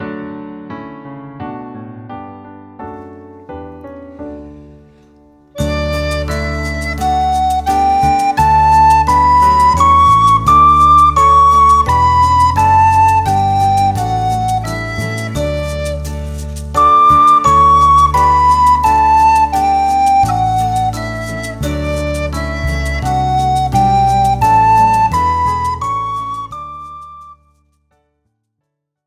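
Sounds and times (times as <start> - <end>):
flute playing a D major scale: 5.6 - 27.6.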